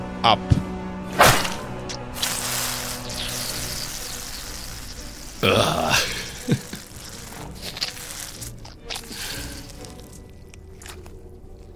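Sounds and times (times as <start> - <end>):
speech: 0.2 - 0.6
knife blades whacking through flesh and bone severing a hand: 1.1 - 5.1, 6.0 - 11.1
soft drawn-out hissing rush: 1.2 - 10.2.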